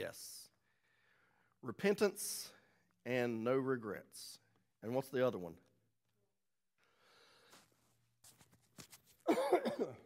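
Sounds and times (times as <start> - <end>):
speech: 0.0 - 0.4, 1.6 - 5.7, 9.3 - 10.0
person coughing into a microphone: 9.3 - 10.0.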